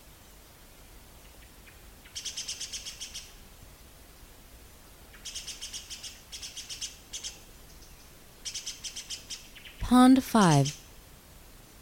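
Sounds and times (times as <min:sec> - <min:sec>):
disturbed great spotted woodpecker Dendrocopos major alarm calls: 0:02.1 - 0:03.3, 0:05.2 - 0:09.8
speech: 0:09.9 - 0:10.8.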